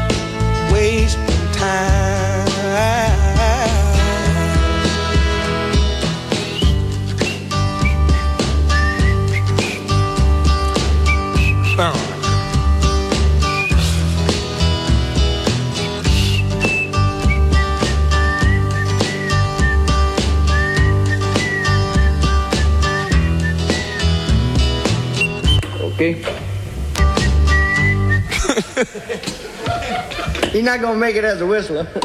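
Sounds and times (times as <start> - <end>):
soul band playing a steady groove: 0.0 - 25.6, 26.5 - 28.4
man whistling a wavering melody: 6.6 - 10.1, 11.0 - 12.0, 13.4 - 14.0, 16.0 - 25.8, 27.0 - 28.3
voices chuckling and talking: 28.2 - 30.6
speech: 30.6 - 32.0.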